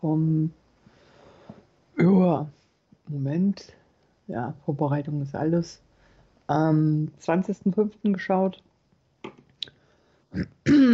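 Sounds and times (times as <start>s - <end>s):
speech: 0.0s - 0.6s, 2.0s - 5.8s, 6.5s - 8.7s, 10.3s - 10.9s
throat clearing: 10.4s - 10.9s.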